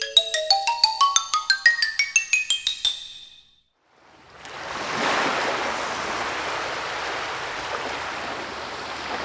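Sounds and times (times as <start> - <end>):
quick rising run of bright chimes: 0.0 - 3.6
ocean waves rolling onto a sandy ocean shore: 3.9 - 9.2.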